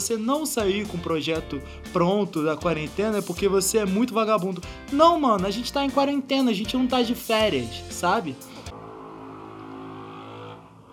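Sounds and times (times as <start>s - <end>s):
speech: 0.0s - 8.5s
motorcycle engine revving outside: 8.7s - 10.9s.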